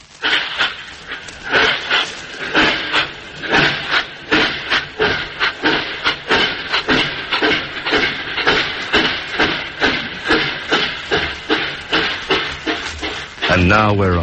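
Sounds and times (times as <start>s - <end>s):
constant hissing rush of a train: 0.0s - 14.2s
train rolling along chugging: 0.0s - 14.2s
speech: 13.8s - 14.2s.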